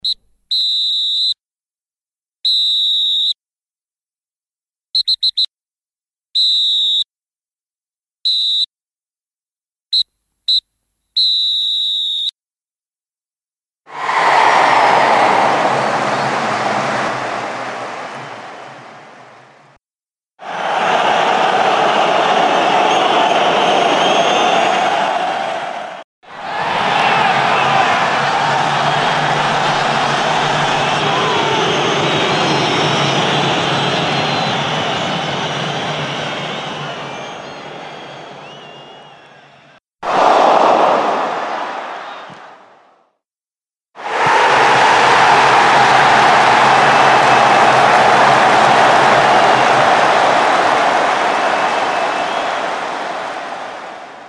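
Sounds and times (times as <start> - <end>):
football referee whistle: 0.0 - 1.4, 2.4 - 3.4, 6.4 - 7.1, 8.2 - 8.7, 11.2 - 12.4, 20.5 - 42.4, 44.1 - 53.9
football crowd noise: 13.9 - 19.8, 20.4 - 43.0, 44.0 - 54.2.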